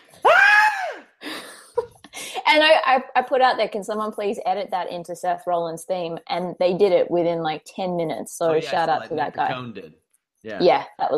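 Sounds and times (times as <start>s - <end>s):
scream from a played wrestling clip: 0.2s - 1.0s
speech: 2.5s - 11.1s.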